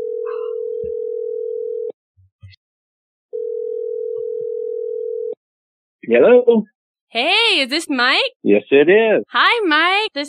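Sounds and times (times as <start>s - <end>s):
telephone ringback tone of an outgoing call: 0.0s - 1.9s, 3.3s - 5.4s
speech: 6.1s - 10.2s.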